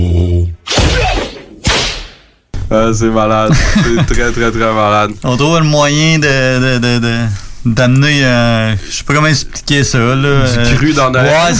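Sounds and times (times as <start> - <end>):
whip cracks with swishing ringing tail: 0.7 - 2.4
speech: 2.8 - 11.5
laughter: 3.5 - 4.4.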